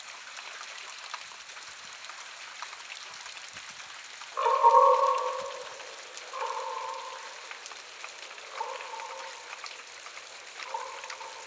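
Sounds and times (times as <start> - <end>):
constant crackle of background noise: 0.0 - 11.4
raven giving harsh croaks: 4.3 - 11.4.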